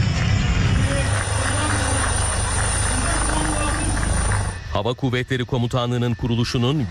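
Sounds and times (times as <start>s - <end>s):
military aircraft and helicopters roaring past in a flight display: 0.2s - 4.7s
speech: 4.8s - 6.8s.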